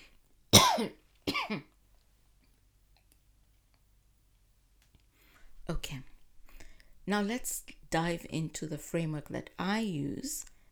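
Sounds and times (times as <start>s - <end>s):
person coughing: 0.6s - 1.7s
speech: 0.8s - 1.7s, 7.1s - 10.5s.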